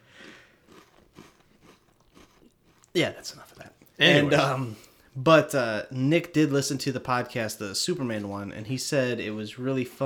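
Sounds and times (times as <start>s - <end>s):
crunchy snack being chewed: 0.1s - 3.0s
speech: 3.0s - 10.0s.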